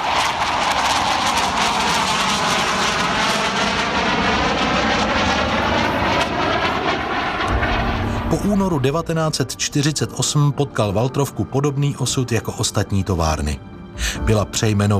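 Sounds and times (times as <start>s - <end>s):
Aero L-29 Delfín jet aircraft engine roaring: 0.0s - 9.9s
speech: 8.5s - 14.9s.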